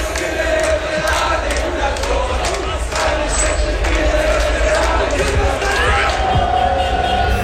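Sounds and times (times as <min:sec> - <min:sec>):
crowd cheering and celebrating after a match: 0:00.0 - 0:07.4.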